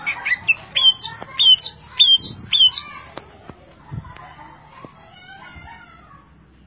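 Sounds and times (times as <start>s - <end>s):
leafbird making bright whistled slurred notes: 0.0s - 2.9s.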